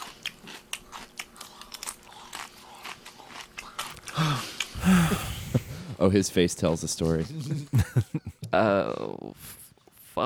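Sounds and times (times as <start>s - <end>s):
close-miked chewing of jelly beans: 0.0s - 5.8s
speech: 6.0s - 7.8s, 8.5s - 9.2s.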